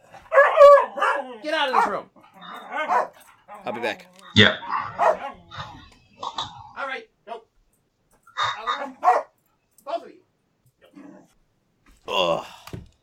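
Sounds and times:
dogs fighting and barking: 0.0 - 6.8, 8.3 - 9.4
dogs whimpering: 0.3 - 6.7
speech: 1.4 - 2.2, 2.8 - 5.2.

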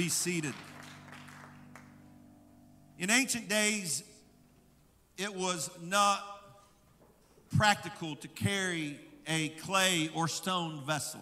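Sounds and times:
speech: 0.0 - 0.7, 3.0 - 4.1, 5.2 - 6.3, 7.5 - 11.2
audience clapping hands in praise: 0.0 - 2.2.

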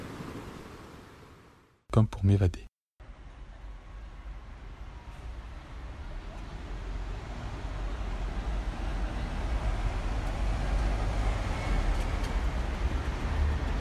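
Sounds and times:
speech: 2.0 - 2.7
road traffic rumble of passing vehicles: 3.0 - 13.8.

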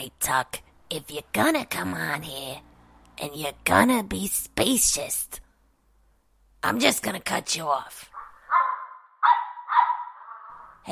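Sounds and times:
speech: 0.0 - 5.4, 6.6 - 8.1
dog whiny barking through a phone line: 8.1 - 10.8.

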